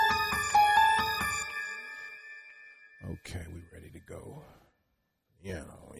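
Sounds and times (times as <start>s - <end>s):
eerie synth melody: 0.0s - 3.8s
speech: 5.4s - 5.9s.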